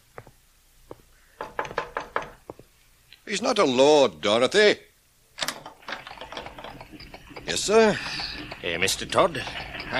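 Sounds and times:
man knocking on a wooden house door: 0:01.4 - 0:02.4
speech: 0:03.3 - 0:04.9, 0:07.5 - 0:09.9.

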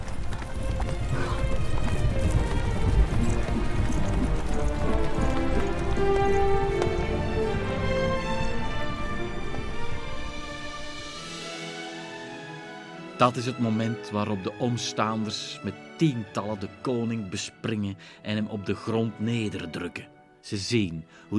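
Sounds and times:
horse hooves galloping: 0:00.0 - 0:11.4
speech: 0:13.2 - 0:21.3.

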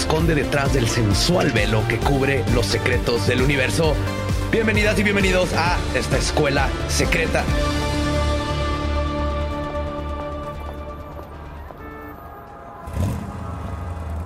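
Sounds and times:
speech: 0:00.1 - 0:07.8
heavy road traffic: 0:07.5 - 0:14.2
car engine droning in heavy road traffic on the drive to work: 0:10.6 - 0:14.2.

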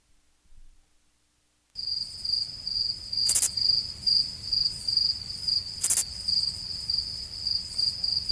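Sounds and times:
crickets chirping sound effect: 0:01.8 - 0:08.3.

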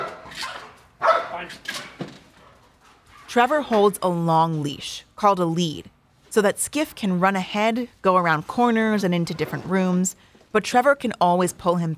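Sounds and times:
sheriff's office police dog barking during building search: 0:00.0 - 0:01.5
speech: 0:01.4 - 0:01.7, 0:03.3 - 0:11.9.

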